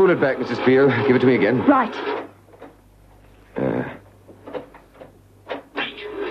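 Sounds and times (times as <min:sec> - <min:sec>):
speech: 0:00.0 - 0:02.3
recorded knocks of a prisoner tapping code: 0:04.2 - 0:05.7.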